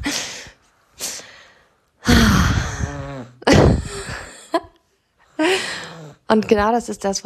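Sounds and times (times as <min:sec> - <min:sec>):
baby snoring in a carrier: 0:02.5 - 0:03.4
speech: 0:06.3 - 0:07.2.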